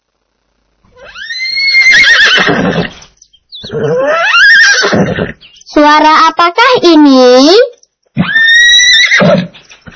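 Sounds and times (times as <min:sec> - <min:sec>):
horse whinnying with shrill quavering neighs: 0:00.9 - 0:05.4, 0:08.2 - 0:09.9
speech: 0:02.4 - 0:03.0, 0:05.2 - 0:08.3
person asking a question: 0:05.7 - 0:07.8.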